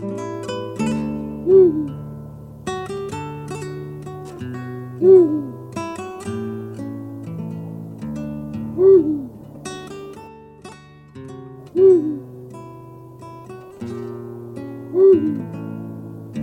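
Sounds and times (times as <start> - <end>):
soft music: 0.0 - 16.4
Eurasian eagle-owl deep booming hoots: 1.4 - 2.0, 5.0 - 5.5, 14.9 - 15.4.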